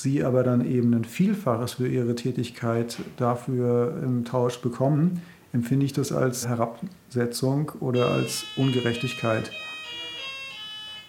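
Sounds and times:
speech: 0:00.0 - 0:09.6
electronic doorbell chiming: 0:08.0 - 0:11.0.

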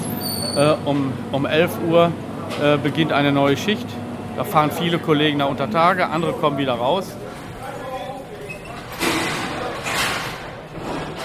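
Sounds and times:
hum of indistinct voices: 0:00.3 - 0:11.0
speech: 0:00.6 - 0:07.2
metal mine turnstile clunking as workers pass through: 0:07.3 - 0:11.2.

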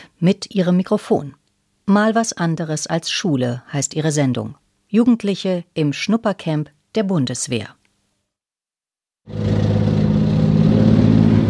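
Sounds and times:
speech: 0:00.2 - 0:07.8, 0:09.3 - 0:09.6
Marder armoured infantry fighting vehicle engine starting and idling at Augustdorf training area, Germany: 0:09.3 - 0:11.4.

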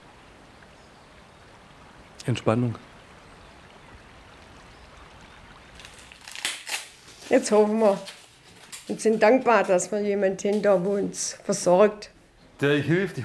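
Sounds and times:
clear water of a river flowing slowly: 0:00.0 - 0:07.1
speech: 0:02.3 - 0:02.9, 0:07.3 - 0:08.2, 0:08.9 - 0:13.2.

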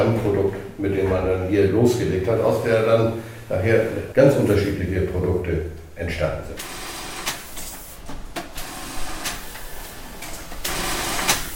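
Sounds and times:
speech: 0:00.0 - 0:06.8
several sewing machines whirring and clattering in a workroom: 0:06.6 - 0:11.5.

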